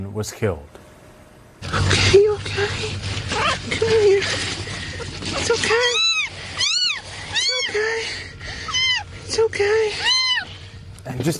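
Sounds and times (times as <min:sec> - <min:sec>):
speech: 0:00.2 - 0:00.8, 0:01.6 - 0:04.5, 0:05.4 - 0:06.0, 0:09.3 - 0:10.2, 0:11.1 - 0:11.3
kitten meowing after rescue from tornado debris: 0:05.5 - 0:07.9, 0:08.6 - 0:09.1, 0:09.9 - 0:10.6.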